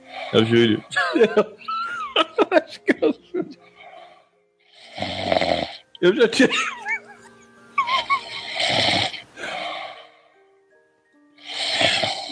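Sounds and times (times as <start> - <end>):
man snoring: 0.0 - 0.9, 4.7 - 6.0, 7.9 - 10.2, 11.4 - 12.3
speech: 0.3 - 1.7, 2.6 - 3.6, 5.3 - 6.8
laughter: 0.8 - 3.6, 6.2 - 8.4.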